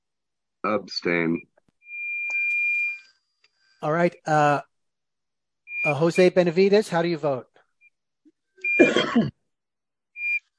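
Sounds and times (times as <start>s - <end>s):
speech: 0.6s - 1.5s, 3.8s - 4.7s, 5.8s - 7.5s, 9.2s - 9.4s
short high-pitched electronic beeps on a call line: 1.2s - 3.1s, 5.7s - 6.4s, 8.6s - 8.9s.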